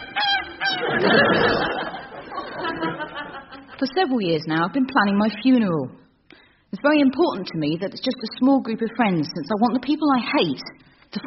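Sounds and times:
goose honking loudly with agitated squawks and cackles: 0.0s - 2.0s
laughter: 0.0s - 3.9s
speech: 1.0s - 1.6s, 3.8s - 6.0s, 6.8s - 11.2s.

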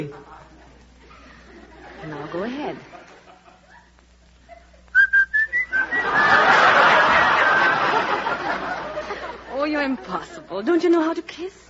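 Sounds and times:
speech: 0.0s - 0.3s, 2.0s - 3.1s, 9.6s - 11.6s
laughter: 0.0s - 4.9s, 5.5s - 10.2s
person whistling a quick run of rising short clear notes: 5.0s - 6.4s.

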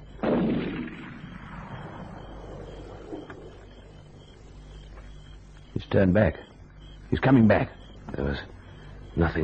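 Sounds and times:
loud gunshot fired at a big tree: 0.2s - 2.0s
speech: 5.9s - 6.5s, 7.1s - 8.6s, 9.2s - 9.4s.

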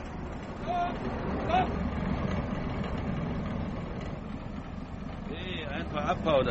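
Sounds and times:
heavy truck engine rumbling while shifting into gear and pulling away: 0.0s - 6.4s
speech: 0.9s - 1.8s, 6.0s - 6.4s.

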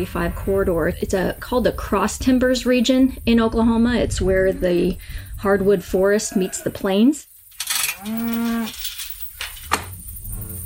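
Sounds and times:
speech: 0.0s - 7.3s, 8.0s - 8.8s
beef cow mooing on a ranch in south central Oklahoma: 6.0s - 6.9s, 7.8s - 8.9s, 10.3s - 10.6s.

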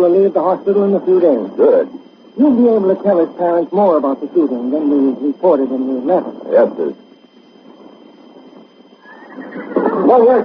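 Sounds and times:
speech: 0.0s - 7.0s, 9.4s - 10.4s
big black horse neighing: 9.0s - 10.1s.

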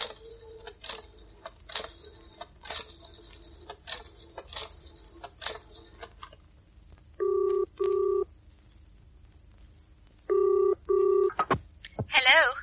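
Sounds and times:
telephone line ringing with double bursts: 7.2s - 8.3s, 10.3s - 11.3s.

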